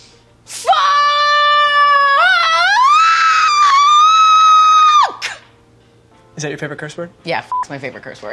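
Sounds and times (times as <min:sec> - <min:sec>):
person screaming imitating a bungee jump scream: 0:00.6 - 0:05.4
speech: 0:06.4 - 0:08.3.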